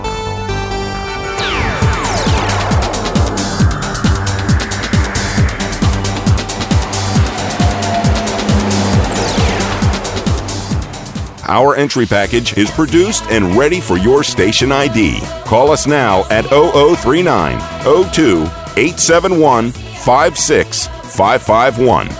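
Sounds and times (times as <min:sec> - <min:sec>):
radio traffic theme jingle with musical tones and a driving beat: 0:00.0 - 0:22.1
whooshing car pass-by sweeps: 0:01.7 - 0:11.5
speech: 0:11.5 - 0:22.1.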